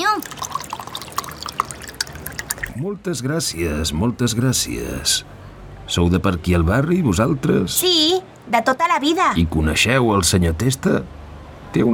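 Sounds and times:
lemonade pouring into a small glass: 0.0s - 2.8s
speech: 2.8s - 11.9s.

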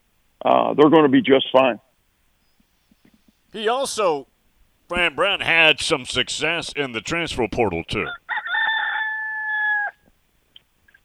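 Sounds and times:
speech: 0.4s - 1.8s, 3.5s - 4.3s, 4.9s - 8.2s
rooster crowing: 8.0s - 10.1s.

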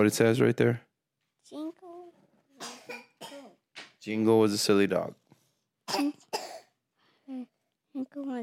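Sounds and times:
speech: 0.0s - 1.6s, 4.0s - 5.2s
child reading a sentence aloud: 1.5s - 2.2s, 7.3s - 8.4s
loud harsh cough: 2.6s - 3.6s, 5.9s - 6.8s.

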